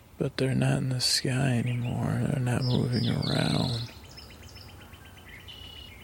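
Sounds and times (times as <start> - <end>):
low rumble: 0.0 - 4.6
birds chirping: 0.0 - 6.0
speech: 0.2 - 4.0
thin whistled bird call: 2.6 - 6.0.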